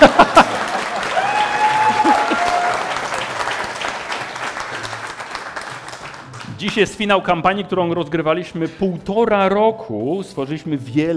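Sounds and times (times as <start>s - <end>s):
laughter: 0.0s - 2.7s
audience applause: 0.0s - 6.7s
speech: 6.7s - 11.1s.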